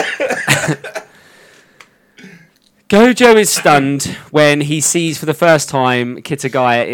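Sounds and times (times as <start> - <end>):
man coughing with a tissue over his nose: 0.0 - 1.1, 2.2 - 2.6, 3.5 - 4.2
speech: 0.1 - 1.0, 2.9 - 6.9.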